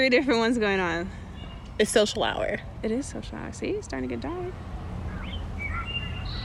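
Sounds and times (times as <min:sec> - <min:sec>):
speech: 0:00.0 - 0:01.2, 0:01.8 - 0:04.8
steady low outdoor rumble: 0:00.0 - 0:06.4
wood thrush singing at dusk: 0:05.1 - 0:06.4.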